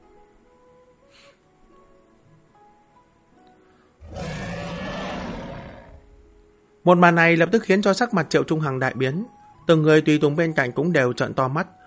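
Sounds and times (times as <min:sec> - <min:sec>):
sea beast roaring fiercely: 0:04.0 - 0:06.0
speech: 0:06.8 - 0:11.8.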